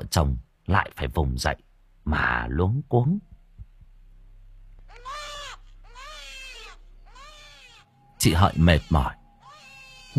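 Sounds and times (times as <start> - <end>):
speech: 0.1 - 3.3, 8.2 - 9.2
baby boy crying at home at night: 4.9 - 10.1.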